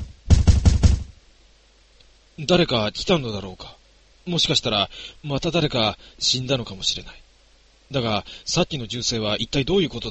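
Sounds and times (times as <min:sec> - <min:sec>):
heavy knocking on a door in a guesthouse: 0:00.0 - 0:01.1
speech: 0:02.4 - 0:07.2, 0:07.9 - 0:10.0.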